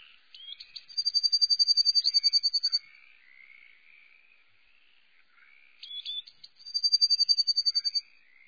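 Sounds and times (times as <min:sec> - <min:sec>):
Eurasian blue tit song with a fast high trill: 0:00.0 - 0:03.0, 0:05.8 - 0:08.4.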